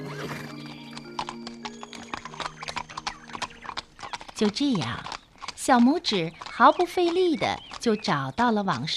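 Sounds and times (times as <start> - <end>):
horse whinnying: 0.0 - 4.4
horse hooves clip-clopping while pulling a cart along a road: 0.0 - 8.9
speech: 4.4 - 8.9.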